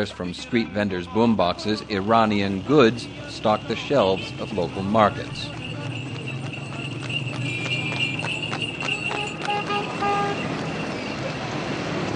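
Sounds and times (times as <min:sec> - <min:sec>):
speech: 0:00.0 - 0:05.6
constant hum of traffic: 0:00.0 - 0:12.1
car horns tooting: 0:02.0 - 0:11.2
horse cart hooves clip-clopping on a busy street in Herat Afghanistan: 0:02.7 - 0:11.2.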